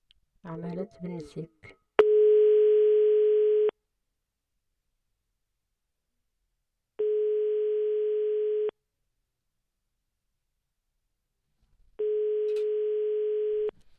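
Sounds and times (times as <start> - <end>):
speech: 0.4 - 1.8
telephone ringback tone while a call waits for an answer: 2.0 - 3.7, 7.0 - 8.7, 12.0 - 13.7.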